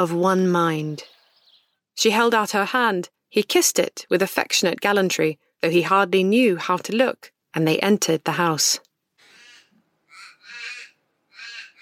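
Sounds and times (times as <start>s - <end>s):
speech: 0.0s - 1.2s, 2.0s - 8.9s
crows cawing: 9.2s - 11.8s.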